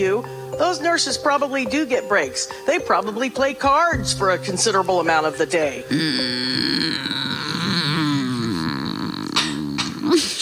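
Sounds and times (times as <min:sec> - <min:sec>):
speech: 0:00.0 - 0:07.2
person growling angrily: 0:05.9 - 0:10.2.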